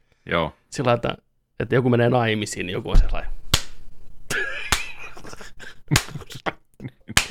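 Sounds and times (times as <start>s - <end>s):
speech: 0.3s - 3.4s
slow sarcastic hand clapping: 4.7s - 4.9s, 5.9s - 6.3s.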